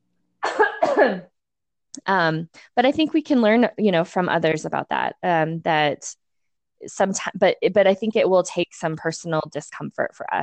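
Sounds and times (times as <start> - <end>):
person coughing: 0.4 - 1.3
speech: 1.0 - 1.3, 2.0 - 6.2, 6.8 - 10.4.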